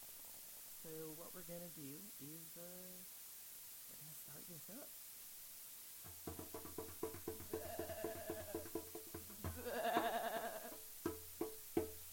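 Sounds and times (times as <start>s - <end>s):
speech: 0.8s - 3.2s, 3.9s - 5.0s, 6.0s - 7.4s
goat bleating: 7.4s - 10.8s.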